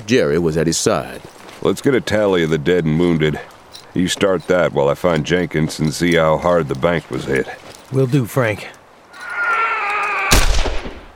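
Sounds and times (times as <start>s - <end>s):
speech: 0.1s - 8.8s
gunshots as men put down badly injured horses: 10.3s - 11.1s.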